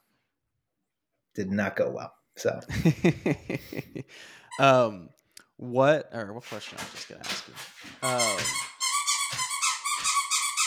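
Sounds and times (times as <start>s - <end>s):
speech: 1.4s - 8.7s
laughter: 2.7s - 4.1s
dog chewing a squeaky toy: 7.8s - 10.6s.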